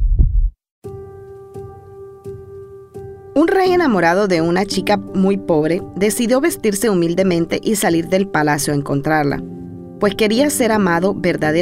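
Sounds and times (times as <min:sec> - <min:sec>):
brief low rumble: 0:00.0 - 0:00.5
heartbeat sound effect thumps: 0:00.0 - 0:00.5
speech: 0:03.4 - 0:11.6.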